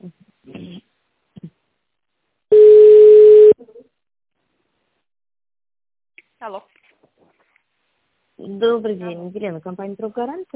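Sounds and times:
telephone line beep while an office reception transfers a call: 2.5 - 3.6
speech: 8.6 - 10.5.

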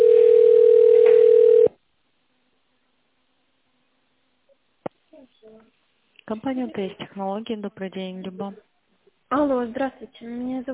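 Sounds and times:
telephone ringing tone while a call connects to an operator: 0.0 - 1.7
speech: 6.3 - 8.7, 9.3 - 10.7.

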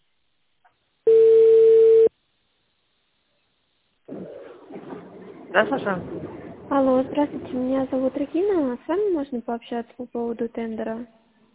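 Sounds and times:
telephone beep while a call is being transferred: 1.1 - 2.1
speech: 5.6 - 11.2.

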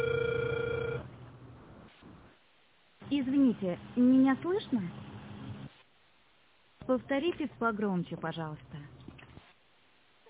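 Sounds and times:
telephone ringback tone while a call is being dialled: 0.0 - 1.1
speech: 3.1 - 5.0, 6.9 - 8.8.

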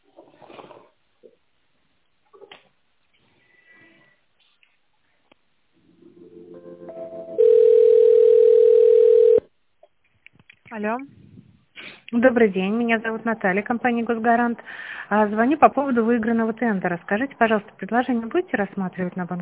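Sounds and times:
telephone ringing tone while a call is transferred: 6.9 - 9.5
speech: 10.8 - 11.2, 12.1 - 19.3.

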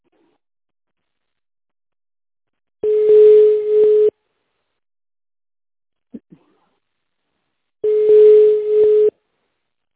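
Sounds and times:
telephone line tone while a call is being connected: 2.8 - 4.1, 7.8 - 9.2.

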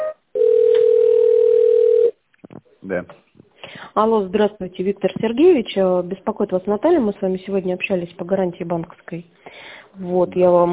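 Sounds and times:
telephone line tone during call transfer to an extension: 0.0 - 2.2
speech: 2.9 - 3.2, 4.0 - 10.7.

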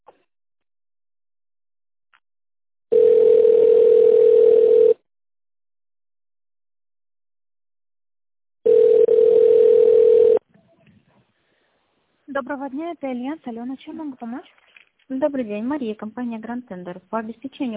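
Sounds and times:
voicemail signal tone before a message is recorded: 2.9 - 5.0, 8.7 - 10.4
speech: 12.5 - 17.7.

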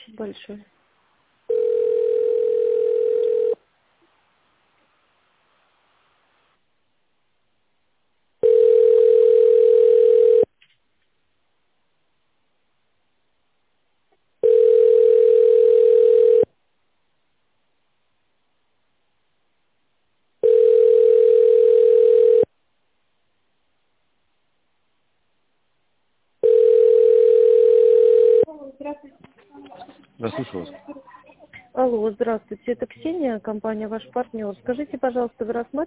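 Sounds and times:
speech: 0.2 - 0.8, 32.2 - 35.8
telephone tones while a call is transferred: 1.5 - 3.6, 8.4 - 10.5, 14.4 - 16.5, 20.4 - 22.5, 26.4 - 28.4.

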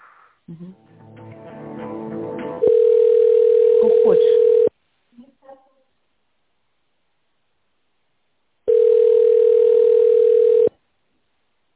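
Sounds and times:
speech: 0.5 - 1.4
telephone tones on a call being transferred: 2.6 - 4.7, 8.7 - 10.7.

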